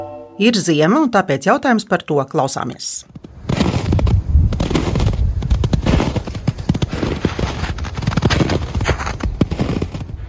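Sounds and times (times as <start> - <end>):
speech: 0.4 - 3.2
heavy footsteps crunching through deep snow: 3.1 - 10.2.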